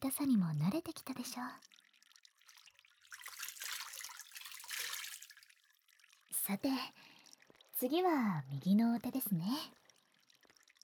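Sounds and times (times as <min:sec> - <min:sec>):
speech: 0:00.0 - 0:01.8, 0:06.5 - 0:07.0, 0:07.8 - 0:09.8
water poured over an arm up to the elbow: 0:01.7 - 0:06.2.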